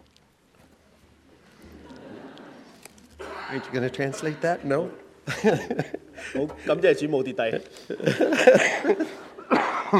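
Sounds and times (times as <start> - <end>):
laughter: 1.5 - 9.9
speech: 3.5 - 9.3
person getting over a cold coughing: 8.6 - 9.9.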